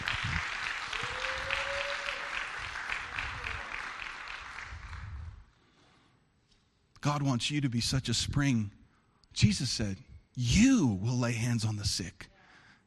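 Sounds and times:
audience applauding: 0:00.0 - 0:05.3
whistle or cheer from the crowd: 0:01.0 - 0:02.4
speech: 0:07.0 - 0:08.8, 0:09.4 - 0:12.3.

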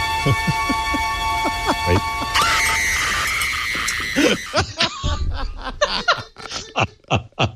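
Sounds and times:
shrill sustained scream from a played video: 0:00.1 - 0:04.8
speech: 0:00.2 - 0:00.8
laughter: 0:00.2 - 0:07.5.

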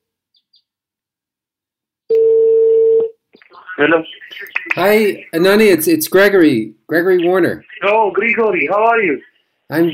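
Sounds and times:
Skype call electronic ringing tone: 0:02.1 - 0:03.1
speech: 0:03.8 - 0:09.9.

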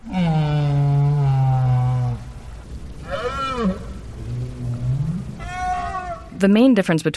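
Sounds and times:
right whale moans recorded underwater: 0:00.0 - 0:06.4
murky underwater background: 0:00.0 - 0:07.1
speech: 0:06.4 - 0:07.1.

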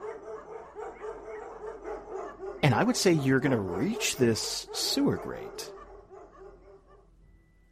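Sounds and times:
dogs barking and yelping: 0:00.0 - 0:07.2
speech: 0:02.6 - 0:05.8.

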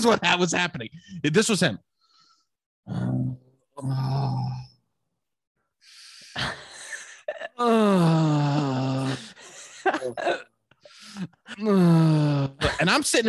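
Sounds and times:
speech: 0:00.0 - 0:01.9, 0:02.9 - 0:03.2, 0:03.8 - 0:04.7, 0:07.6 - 0:09.2, 0:09.9 - 0:10.5, 0:11.2 - 0:13.2
voice imitating a man's heavy moaning breathing in a sauna: 0:02.9 - 0:04.8, 0:07.5 - 0:09.4, 0:11.0 - 0:12.6.

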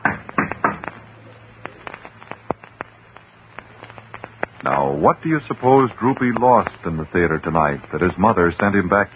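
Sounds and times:
knocking on the wooden door of a theater manager's office: 0:00.0 - 0:00.9
low steady hum: 0:00.0 - 0:09.1
speech: 0:05.0 - 0:09.1.

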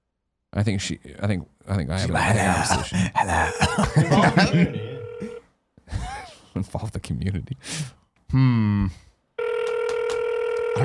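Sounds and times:
speech: 0:00.6 - 0:05.3, 0:06.6 - 0:09.0
voice-like tone: 0:02.0 - 0:05.4
laughter: 0:02.1 - 0:06.4
phone ringing tone over the line: 0:04.2 - 0:05.4, 0:09.4 - 0:10.8.

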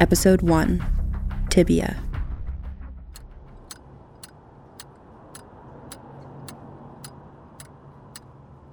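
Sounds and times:
speech: 0:00.0 - 0:01.0, 0:01.6 - 0:02.1
metronome ticking: 0:03.2 - 0:08.7.

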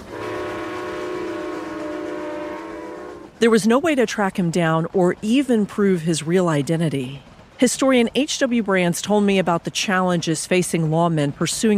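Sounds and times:
train whistle blowing a long sustained tone: 0:00.0 - 0:03.4
rumble of a train passing: 0:00.0 - 0:11.7
speech: 0:03.4 - 0:11.7.

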